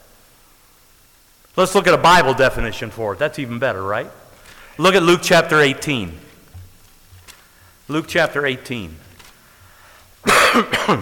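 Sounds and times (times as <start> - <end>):
speech: 1.6 - 4.2, 4.8 - 6.2, 7.9 - 9.0, 10.5 - 11.0
dry cough from a tickle at the back of the throat: 10.2 - 11.0.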